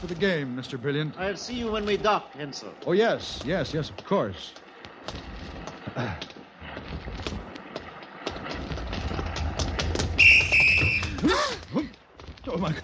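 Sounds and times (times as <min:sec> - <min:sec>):
speech: 0:00.0 - 0:05.3, 0:06.0 - 0:06.3, 0:12.5 - 0:12.8
footsteps around a deck: 0:01.4 - 0:12.8
shrill whistle blast blown by a man doing wind sprints: 0:10.2 - 0:11.2.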